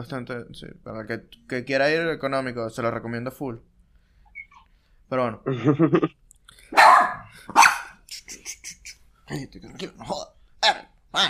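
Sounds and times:
speech: 0:00.0 - 0:03.7, 0:05.1 - 0:07.7, 0:09.3 - 0:11.2
dog yipping: 0:04.3 - 0:04.7, 0:06.8 - 0:08.0
laughter: 0:05.5 - 0:06.1
dog barking: 0:06.7 - 0:08.0.

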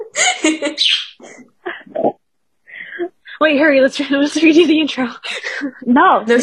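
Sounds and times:
speech: 0:00.4 - 0:01.0, 0:03.5 - 0:06.4
pet bird chirping and chattering: 0:00.5 - 0:01.4.

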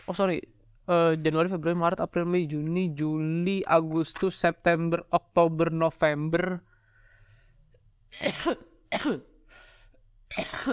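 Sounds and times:
speech: 0:00.1 - 0:06.7, 0:08.1 - 0:09.3, 0:10.3 - 0:10.7
harsh rasping throaty coughs: 0:08.2 - 0:09.6, 0:10.3 - 0:10.7.

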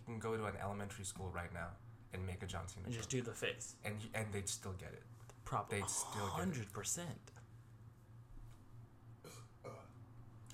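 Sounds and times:
speech: 0:00.0 - 0:07.4
breathy noise bursts: 0:05.8 - 0:06.5
low rumbling burp: 0:09.2 - 0:10.0.

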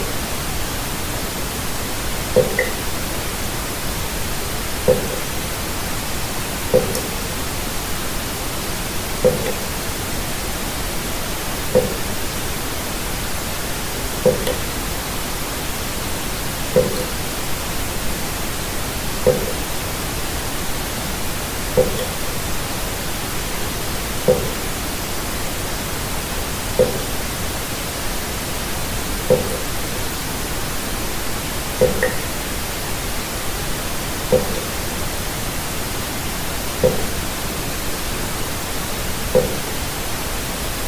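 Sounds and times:
steady pink noise hiss: 0:00.0 - 0:40.8
soft water-drop plinks: 0:02.4 - 0:03.0, 0:04.9 - 0:05.3, 0:06.7 - 0:07.3, 0:09.2 - 0:09.8, 0:11.7 - 0:12.2, 0:14.0 - 0:14.8, 0:16.7 - 0:17.3, 0:19.2 - 0:19.7, 0:21.8 - 0:22.3, 0:24.2 - 0:24.8, 0:26.8 - 0:27.2, 0:29.3 - 0:29.8, 0:31.8 - 0:32.4, 0:34.3 - 0:34.8, 0:36.8 - 0:37.3, 0:39.3 - 0:39.8.

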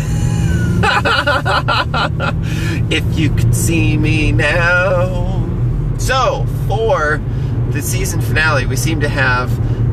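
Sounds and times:
road and engine rumble inside a moving car: 0:00.0 - 0:09.9
laughter: 0:00.6 - 0:02.4
speech: 0:02.0 - 0:05.4, 0:06.0 - 0:09.8.

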